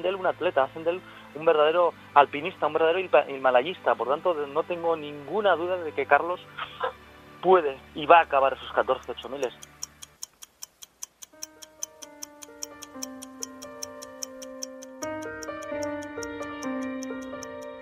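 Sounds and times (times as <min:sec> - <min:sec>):
speech: 0:00.0 - 0:09.7
clock ticking: 0:09.0 - 0:17.8
sustained musical tones: 0:11.4 - 0:17.8.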